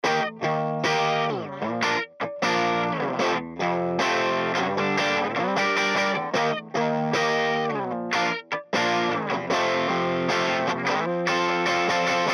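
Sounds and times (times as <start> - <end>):
guitar: 0.0 - 12.3.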